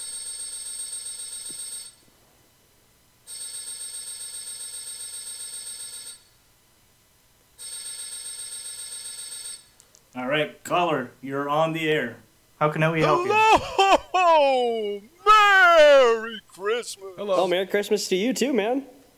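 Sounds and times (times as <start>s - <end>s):
electronic telephone ringback while placing an outgoing call: 0.0s - 2.0s, 3.3s - 6.3s, 7.6s - 9.7s
speech: 10.2s - 15.1s, 15.8s - 19.0s
laughter: 12.3s - 19.1s.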